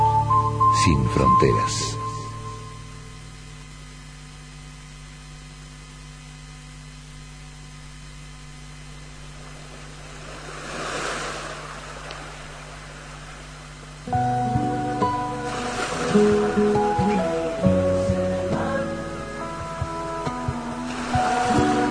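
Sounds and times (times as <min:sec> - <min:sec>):
melodic music piece: 0:00.0 - 0:02.8, 0:14.1 - 0:21.9
speech: 0:00.8 - 0:02.0
ocean wave breaking on the shore: 0:09.6 - 0:13.4, 0:15.3 - 0:17.6, 0:20.8 - 0:21.9
ocean surf hissing: 0:10.1 - 0:13.6, 0:14.8 - 0:18.1, 0:20.5 - 0:21.9.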